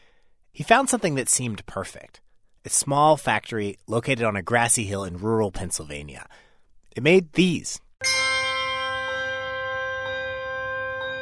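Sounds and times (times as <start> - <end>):
speech: 0.6 - 8.2
handbells ringing: 8.0 - 11.1.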